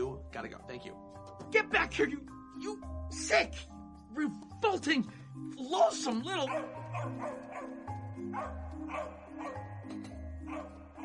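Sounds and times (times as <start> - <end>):
steady low musical background: 0.0 - 11.0
speech: 0.4 - 10.7
dog barking: 6.4 - 9.7, 10.4 - 11.0.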